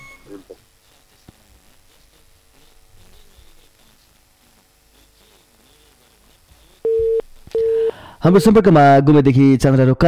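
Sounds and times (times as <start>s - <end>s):
telephone busy tone after a dropped call: 0.0s - 3.6s, 6.6s - 8.6s
faint telephone line hiss: 0.0s - 8.6s
speech: 8.2s - 10.0s.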